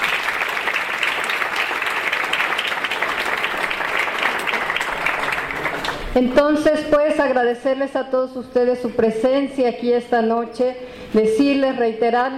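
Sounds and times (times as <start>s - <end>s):
audience applause: 0.0s - 6.2s
speech: 6.1s - 12.3s.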